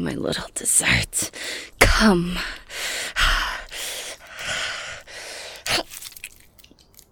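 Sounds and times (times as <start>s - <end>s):
speech: 0.0s - 3.0s
creature's breathy rushes while feeding: 1.3s - 6.0s.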